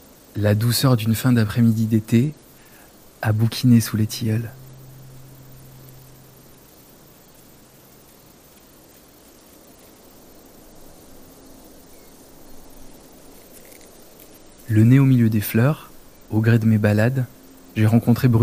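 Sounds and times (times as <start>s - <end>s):
cicadas shrilling: 0.0s - 18.4s
dense chorus of insects in tall grass on a late summer afternoon: 0.0s - 18.4s
speech: 0.4s - 2.4s, 3.2s - 4.6s, 14.7s - 18.4s
bee buzzing low: 2.3s - 16.3s.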